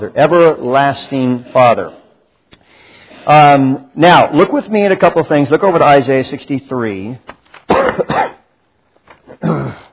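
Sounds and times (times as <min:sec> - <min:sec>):
speech: 0:00.0 - 0:02.0, 0:03.2 - 0:08.4, 0:09.4 - 0:09.9
person with a lingering cough coughing: 0:07.7 - 0:08.5, 0:09.3 - 0:09.9
throat clearing: 0:09.3 - 0:09.9.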